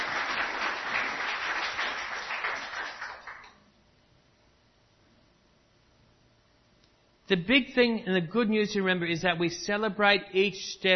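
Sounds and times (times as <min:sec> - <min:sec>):
audience applause: 0:00.0 - 0:03.6
speech: 0:07.3 - 0:10.9.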